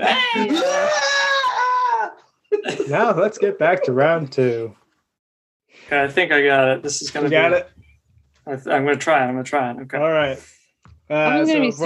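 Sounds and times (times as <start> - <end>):
speech: 0.0 - 0.7, 2.9 - 4.8, 5.8 - 7.8, 8.5 - 11.8
person's voice imitating a Wilhelm scream: 0.0 - 2.2
laughter: 0.0 - 4.7.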